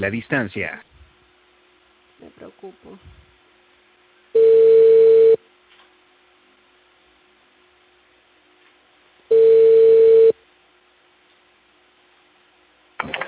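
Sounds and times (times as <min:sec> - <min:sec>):
speech: 0:00.0 - 0:00.9, 0:02.2 - 0:03.2
telephone electronic tones while placing a call: 0:04.4 - 0:05.4, 0:09.3 - 0:10.4.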